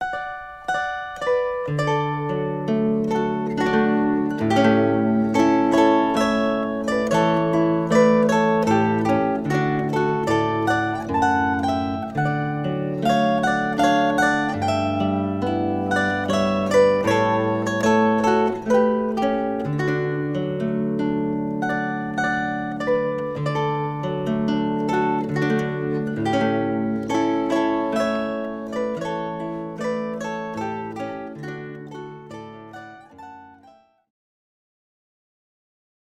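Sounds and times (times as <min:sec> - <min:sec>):
zither: 0:00.0 - 0:33.8.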